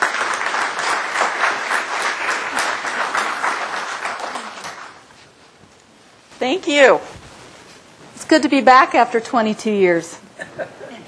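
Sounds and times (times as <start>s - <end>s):
audience applauding: 0.0s - 5.1s
speech: 6.4s - 7.2s, 8.3s - 10.8s.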